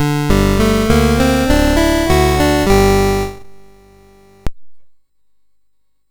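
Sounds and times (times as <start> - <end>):
chiptune music on a sound chip: 0.0 - 4.5.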